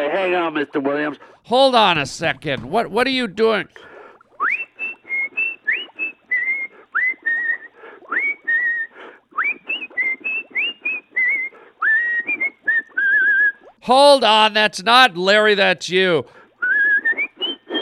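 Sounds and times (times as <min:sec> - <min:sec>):
speech: 0:00.1 - 0:04.5, 0:13.9 - 0:16.4
person whistling a lively bouncy tune: 0:04.4 - 0:13.6, 0:16.6 - 0:17.7.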